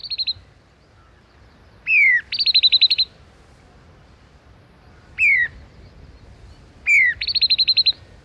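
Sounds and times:
common babbler calling: 0.0s - 0.4s, 1.8s - 3.2s, 4.9s - 6.2s, 6.8s - 8.1s.

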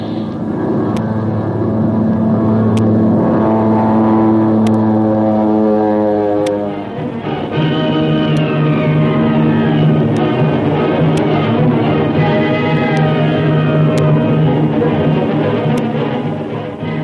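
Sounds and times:
warplane engine roaring in a steep dive toward the sea: 0.0s - 17.0s.

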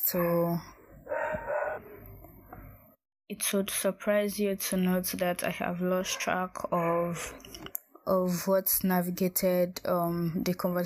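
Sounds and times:
speech: 0.1s - 0.8s, 3.3s - 10.8s
faint dog barking: 1.0s - 2.1s.

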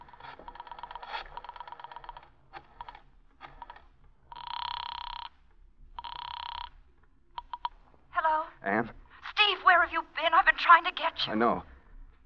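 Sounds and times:
mechanical clicks of a telephone being dialed: 0.1s - 5.2s
buzzing telephone rings: 0.1s - 5.4s, 6.0s - 6.8s, 7.4s - 7.8s
speech: 8.7s - 9.0s, 9.9s - 11.7s.

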